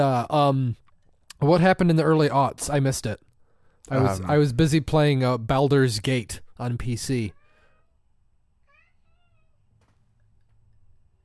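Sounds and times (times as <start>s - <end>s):
speech: 0.0s - 0.8s, 1.4s - 7.4s
steady low hum: 0.1s - 11.2s
male cat meowing with drawn-out wavering cries: 8.6s - 9.6s.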